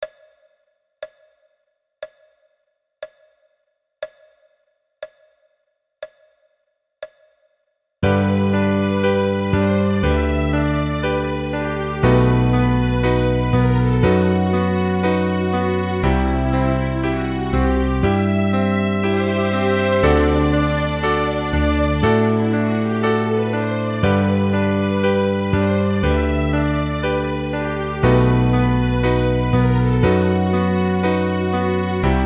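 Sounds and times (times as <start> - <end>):
bass: 8.0 - 32.2
piano: 8.0 - 32.2
violins: 8.1 - 32.2.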